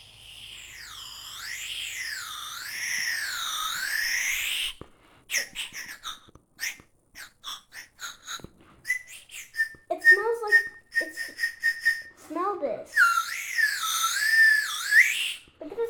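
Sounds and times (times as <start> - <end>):
lollipop candy whistle tooting: 0.1 - 12.2, 12.9 - 15.5
child voices: 9.8 - 11.4, 15.6 - 15.8.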